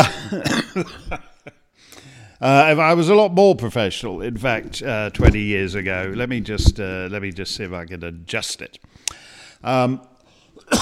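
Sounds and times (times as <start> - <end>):
person coughing: 0.0 - 1.3, 10.6 - 10.8
speech: 0.3 - 1.3, 2.4 - 10.1.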